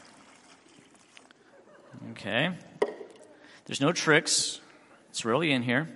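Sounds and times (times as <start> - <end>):
water pouring into a plastic bag: 0.0 - 1.4
speech: 2.2 - 2.7, 3.7 - 4.6, 5.2 - 5.9.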